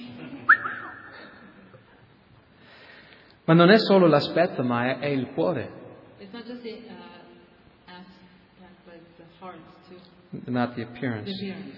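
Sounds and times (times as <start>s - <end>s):
faint low hum: 0.0s - 11.7s
men's wolf whistle sliding sharply upward: 0.5s - 1.3s
speech: 3.5s - 7.2s, 9.4s - 11.7s.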